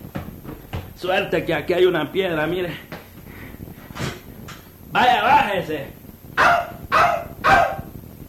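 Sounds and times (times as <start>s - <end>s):
speech: 1.0s - 2.9s, 4.9s - 6.6s
small dog barking: 6.4s - 8.0s.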